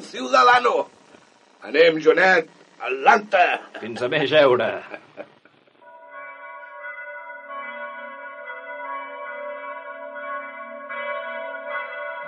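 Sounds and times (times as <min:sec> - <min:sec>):
speech: 0:00.1 - 0:01.0, 0:01.6 - 0:05.4
laughter: 0:03.4 - 0:05.4
church bell tolling: 0:05.8 - 0:12.2.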